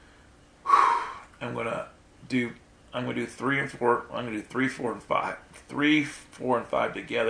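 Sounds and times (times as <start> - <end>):
deep noisy inhale: 0.0 - 1.4
slow voiced breaths like soft sighs: 0.0 - 1.4
speech: 1.4 - 7.2.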